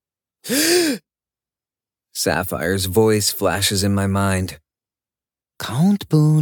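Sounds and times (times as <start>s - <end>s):
person clutching their throat gasping for air: 0.4s - 1.0s
speech: 0.5s - 1.0s, 2.2s - 4.6s, 5.6s - 6.3s.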